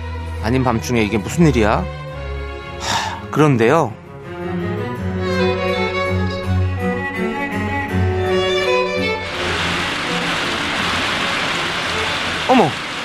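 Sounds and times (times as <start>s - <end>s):
soft melodic music: 0.0s - 12.7s
speech: 0.4s - 2.0s, 2.8s - 4.7s, 12.5s - 12.8s
rain falling: 9.1s - 13.0s.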